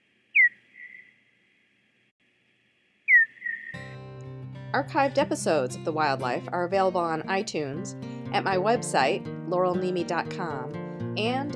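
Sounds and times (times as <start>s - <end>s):
Hawaiian hoary bat falling chirps drawn into a buzz: 0.3s - 1.4s, 3.1s - 3.8s
music: 3.8s - 11.5s
speech: 4.7s - 11.5s.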